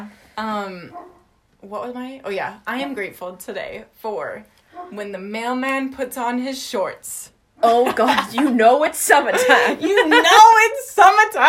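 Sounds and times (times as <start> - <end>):
speech: 0.1 - 11.4
dog barking with downward-sliding pitch: 0.9 - 1.2, 4.8 - 5.0.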